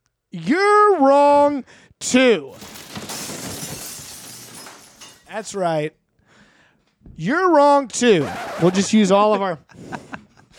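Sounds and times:
speech: 0.3 - 2.8, 5.3 - 6.0, 7.2 - 10.0
glass shattering sound effect: 2.5 - 5.7.

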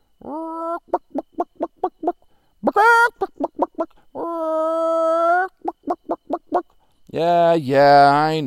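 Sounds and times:
chicken clucking: 0.2 - 4.4, 5.4 - 6.7
chicken squawking: 0.2 - 6.7
speech: 7.2 - 8.4.

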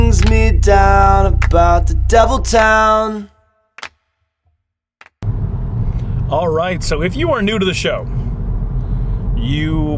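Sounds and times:
low-frequency rumble inside a moving car: 0.0 - 3.2, 5.2 - 9.9
speech: 0.3 - 3.9, 6.3 - 8.2, 9.4 - 9.9.

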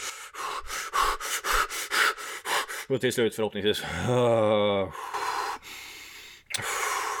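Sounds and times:
long deep breaths in and out: 0.0 - 2.9, 4.8 - 7.1
person panting heavily as from standing in a cold shower: 0.0 - 2.9, 4.8 - 7.1
speech: 2.9 - 5.2.

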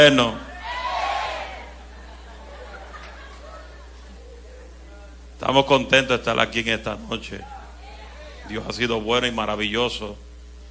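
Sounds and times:
speech: 0.0 - 0.4, 5.4 - 7.6, 8.5 - 10.2
large crowd shouting back in unison in a big hall: 0.5 - 1.9
laughter: 1.6 - 4.8.

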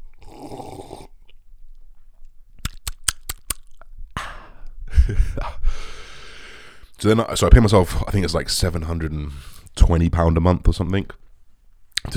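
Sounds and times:
slurping and swallowing coffee from a cup: 0.0 - 1.4, 2.6 - 3.9
sharp clicks: 2.6 - 3.7
speech: 5.1 - 6.0, 7.0 - 11.2
breathy inhale: 5.6 - 6.9.

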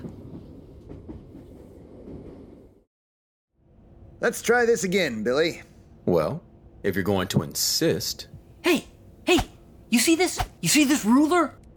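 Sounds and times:
train carriage rumbling along the rails: 0.0 - 2.8
speech: 4.2 - 11.6.

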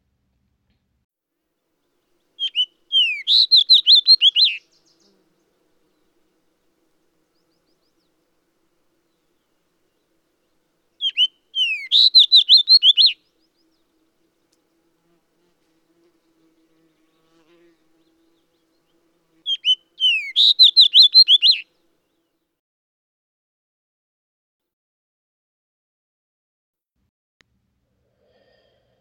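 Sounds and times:
red fox sparrow song: 2.4 - 5.2, 11.0 - 13.8, 19.4 - 21.7.

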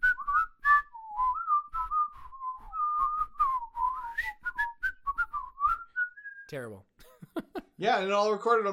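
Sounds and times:
two people whistling different video game theme tunes: 0.0 - 6.5
speech: 6.5 - 8.7.

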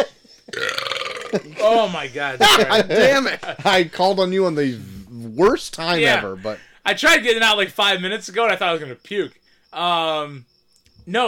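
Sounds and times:
loud raspy buzzing burp: 0.5 - 1.8
laughter: 1.3 - 4.2
speech: 1.3 - 10.5, 11.1 - 11.2.

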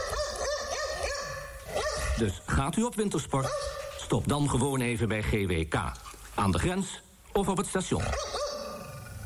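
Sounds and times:
dog barking in high yappy barks: 0.0 - 2.2, 3.4 - 4.0, 8.1 - 8.8
speech: 2.2 - 8.4.

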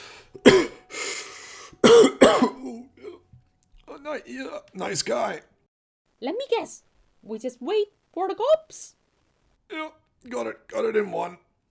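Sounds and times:
throaty wheeze: 0.0 - 3.2
person coughing harshly after smoking a joint: 0.4 - 1.1, 1.8 - 3.2
speech: 4.1 - 5.6, 6.2 - 9.0, 9.7 - 11.4.

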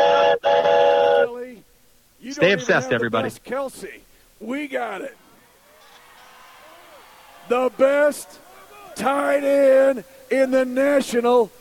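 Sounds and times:
train whistle blowing: 0.0 - 1.4
speech: 2.4 - 5.2, 7.5 - 8.4, 9.0 - 11.6.

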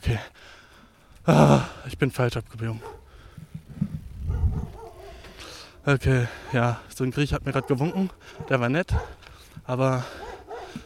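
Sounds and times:
soft outdoor noise: 0.0 - 10.8
speech: 1.2 - 3.0, 5.8 - 10.2
dog barking hoarsely: 2.8 - 3.2, 4.2 - 6.8, 7.4 - 9.2, 10.0 - 10.8.

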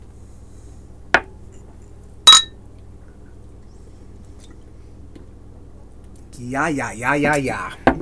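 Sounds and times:
beer glasses clinking in a toast: 2.3 - 2.6
speech: 6.4 - 7.8.

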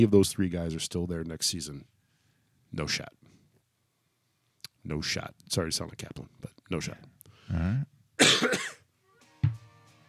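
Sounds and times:
speech: 0.0 - 2.0, 2.7 - 3.3, 4.8 - 8.8
harsh rough coughing: 7.7 - 8.9.

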